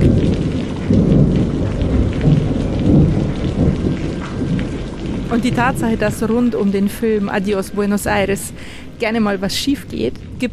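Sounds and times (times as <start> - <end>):
deep rumbling thunder: 0.0 - 10.5
dense downpour during a drive at Lake Starnberg: 0.0 - 10.5
speech: 5.3 - 10.5.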